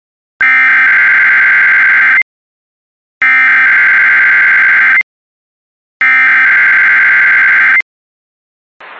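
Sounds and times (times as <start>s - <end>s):
weather radio public warning electronic alarm tone: 0.4s - 2.2s, 3.2s - 5.0s, 6.0s - 7.8s.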